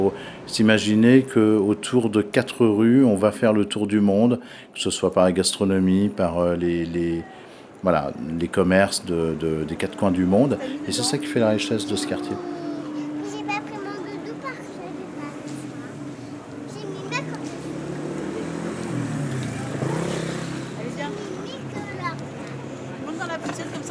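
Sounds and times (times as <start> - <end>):
speech: 0.0 - 12.6
general street chatter: 0.0 - 23.8
city bus engine rumbling along a busy street: 8.0 - 23.8
children's voices: 10.7 - 18.9, 20.6 - 22.7.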